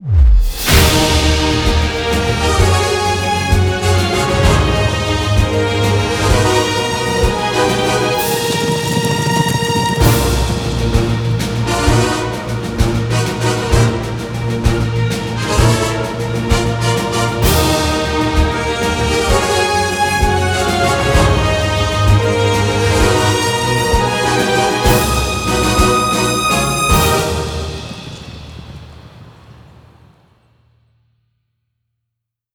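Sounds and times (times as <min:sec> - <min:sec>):
long big win game jingle: 0:00.7 - 0:28.4.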